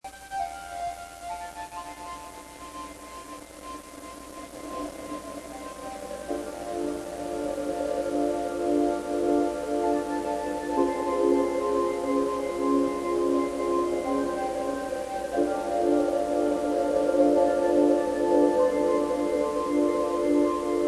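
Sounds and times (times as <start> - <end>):
spooky synthesizer: 4.5 - 20.8.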